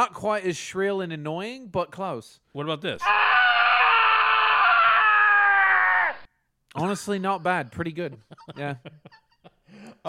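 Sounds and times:
speech: 0:00.0 - 0:03.6, 0:06.8 - 0:09.2
person imitating an angry tennis player yelling: 0:03.0 - 0:06.2
laughter: 0:07.8 - 0:10.0.

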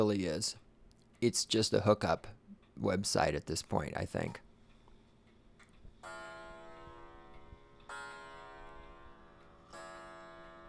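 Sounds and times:
speech: 0:00.0 - 0:00.6, 0:01.2 - 0:04.5
clock striking: 0:06.0 - 0:10.6.

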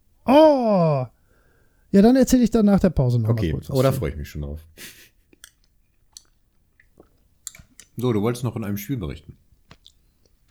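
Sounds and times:
speech: 0:00.3 - 0:00.8, 0:01.9 - 0:05.1, 0:08.0 - 0:09.4
wet chewing with crunchy mouth sounds: 0:05.3 - 0:08.1, 0:09.6 - 0:10.4.

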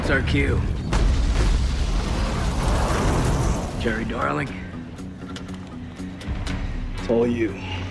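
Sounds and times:
speech: 0:00.1 - 0:00.8, 0:03.8 - 0:04.6, 0:07.1 - 0:07.8
grenade explosion during a grenade hop in a video game: 0:00.6 - 0:03.9.

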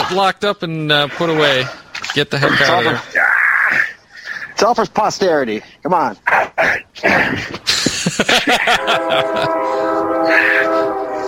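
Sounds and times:
speech: 0:00.1 - 0:03.8, 0:04.6 - 0:11.2
laughter: 0:07.2 - 0:10.8
train horn blaring in a multi-tone blast: 0:08.7 - 0:11.2.

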